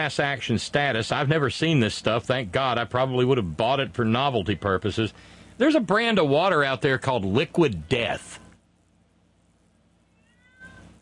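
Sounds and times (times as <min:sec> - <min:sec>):
speech: 0:00.0 - 0:08.4
cat meowing: 0:10.0 - 0:11.0.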